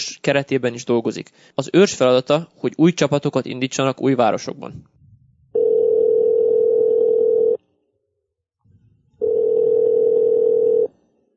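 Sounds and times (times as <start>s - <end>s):
speech: 0.0s - 5.0s
telephone ringback tone as a call is placed: 5.6s - 7.6s, 9.2s - 10.9s.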